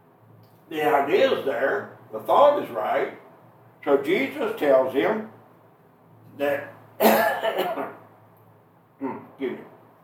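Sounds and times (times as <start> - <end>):
speech: 0.7 - 3.2, 3.8 - 5.4, 6.4 - 8.0, 9.0 - 9.7
person with allergies coughing: 7.0 - 8.0.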